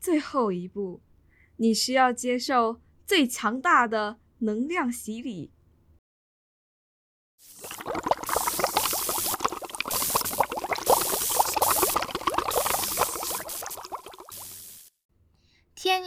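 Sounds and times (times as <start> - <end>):
speech: 0.1 - 5.6
water bubbling vigorously: 7.5 - 14.8.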